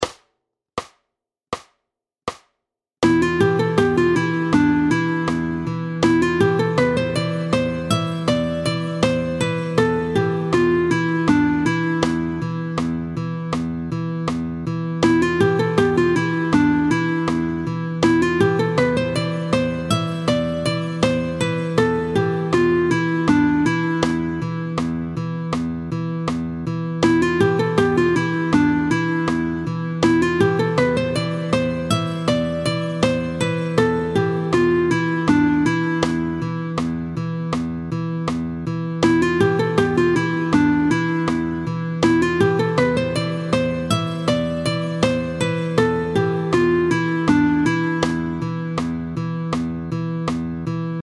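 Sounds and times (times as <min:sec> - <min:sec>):
melody in the Phrygian mode on E: 0:03.0 - 0:51.0.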